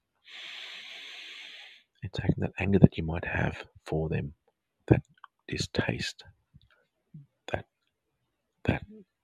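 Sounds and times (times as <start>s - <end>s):
long deep breath in during a guided breathing exercise: 0.3s - 1.9s
speech: 2.1s - 6.4s, 7.5s - 7.7s.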